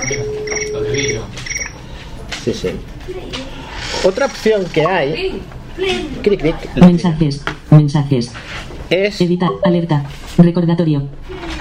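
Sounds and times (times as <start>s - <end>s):
cricket-chirping phone ringtone: 0.0s - 1.8s
speech: 2.4s - 11.4s.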